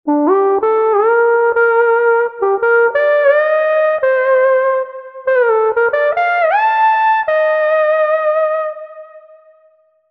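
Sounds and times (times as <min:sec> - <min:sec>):
smooth synth lead: 0:00.1 - 0:09.4.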